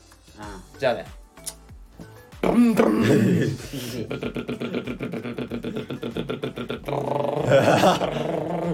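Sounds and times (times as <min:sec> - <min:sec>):
speech: 0:00.8 - 0:01.2, 0:02.5 - 0:08.7
person vocally imitating a motorbike engine revving: 0:02.4 - 0:03.5, 0:04.2 - 0:08.7
laughter: 0:02.9 - 0:08.4.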